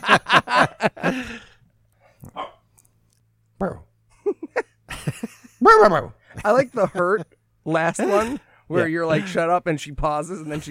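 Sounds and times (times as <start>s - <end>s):
laughter: 0.0s - 1.5s, 4.2s - 5.6s
puppy barking: 2.3s - 2.6s
speech: 5.8s - 10.6s.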